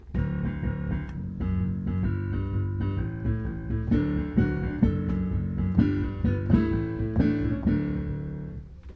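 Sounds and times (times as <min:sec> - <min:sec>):
rocking octaves in jig time: 0:00.0 - 0:08.9.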